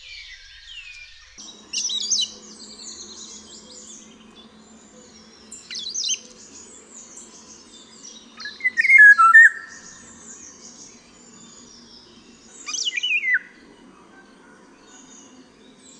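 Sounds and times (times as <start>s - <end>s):
Eurasian golden oriole singing a loud fluty whistled phrase: 0.0s - 4.4s, 5.0s - 6.6s, 7.3s - 13.6s.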